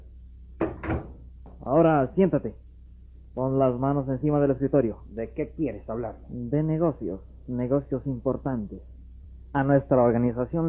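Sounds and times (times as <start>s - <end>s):
quiet hum: 0.0s - 10.6s
office door swinging with a rattling thump: 0.6s - 1.2s
speech: 1.7s - 2.6s, 3.4s - 8.9s, 9.5s - 10.6s.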